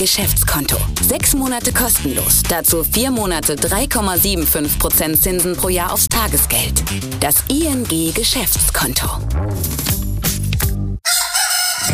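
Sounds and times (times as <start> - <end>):
speech: 0.0 - 10.0
rooster crowing: 11.0 - 11.9.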